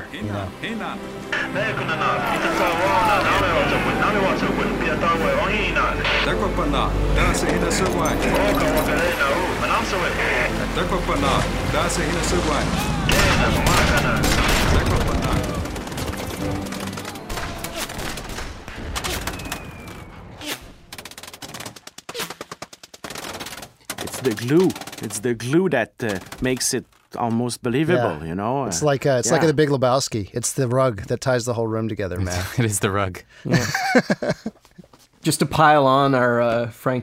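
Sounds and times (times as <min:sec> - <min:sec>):
speech: 0:00.1 - 0:15.5, 0:24.3 - 0:37.0
laughter: 0:01.4 - 0:05.5, 0:33.5 - 0:34.8
dense continuous gunfire: 0:13.1 - 0:19.9, 0:20.6 - 0:25.3
sound-effect bullets whizzing by: 0:16.8 - 0:23.2.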